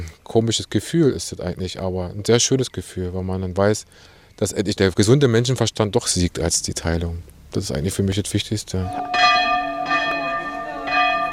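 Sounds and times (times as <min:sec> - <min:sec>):
speech: 0:00.0 - 0:09.4
monastery chapel bell ringing: 0:08.9 - 0:11.3.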